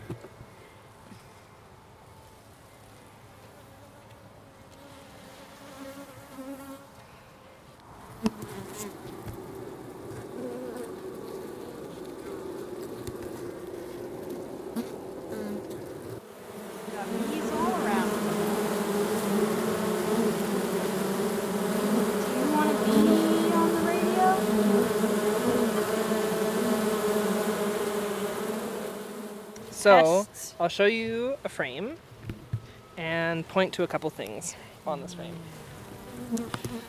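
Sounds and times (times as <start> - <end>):
honeybees buzzing inside a beehive: 4.7 - 7.0, 8.1 - 30.2, 34.9 - 36.8
speech: 8.2 - 9.2, 29.8 - 32.1, 33.0 - 35.6, 36.3 - 36.8.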